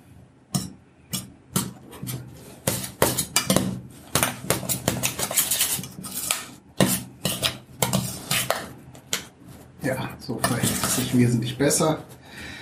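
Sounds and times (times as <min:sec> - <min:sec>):
utensil scraping and clinking against a bowl mixing potato powder into dough: 0:01.8 - 0:08.7, 0:10.3 - 0:11.3
speech: 0:09.9 - 0:12.2.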